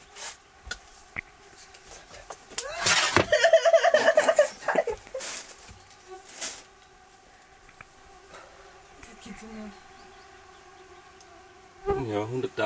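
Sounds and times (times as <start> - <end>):
swarm of mosquitoes buzzing: 0.0 - 12.6
laughter: 2.6 - 5.3.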